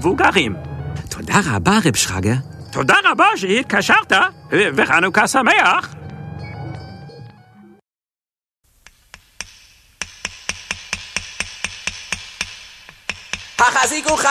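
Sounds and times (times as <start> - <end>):
speech: 0.0 - 6.0, 13.9 - 14.2
hammer driving nails into the wall of a sukkah: 8.8 - 14.2.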